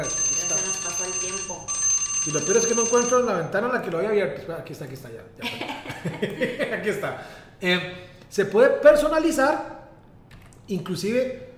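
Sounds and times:
doorbell ringing with a bright electronic tone: 0:00.0 - 0:03.5
speech: 0:01.0 - 0:09.8, 0:10.7 - 0:11.5
laughter: 0:05.4 - 0:07.1.

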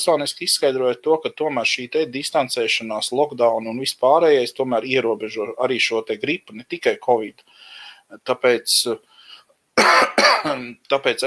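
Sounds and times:
speech: 0:00.0 - 0:09.1, 0:09.8 - 0:11.2
harsh cough: 0:09.8 - 0:10.7
short throaty vocal sounds like clearing the throat: 0:09.8 - 0:10.7.

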